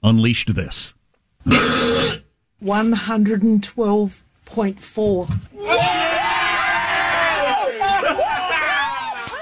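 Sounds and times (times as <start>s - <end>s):
speech: 0.0s - 6.0s
extremely loud rasping burp from a man in Australia after drinking beers: 1.4s - 2.3s
excited voices: 5.5s - 9.3s
crowd cheering and shouting: 5.6s - 9.3s.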